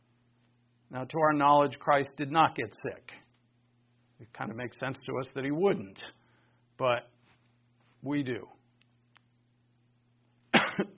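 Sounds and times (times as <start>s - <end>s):
faint steady hum: 0.0s - 10.9s
speech: 0.9s - 3.2s, 4.2s - 6.2s, 6.8s - 7.1s, 8.0s - 8.6s
person coughing: 10.5s - 10.9s.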